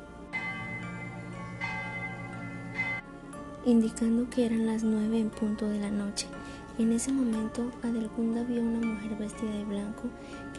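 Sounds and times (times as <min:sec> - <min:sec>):
church bells tolling at night: 0:00.3 - 0:03.0
speech: 0:03.6 - 0:10.5.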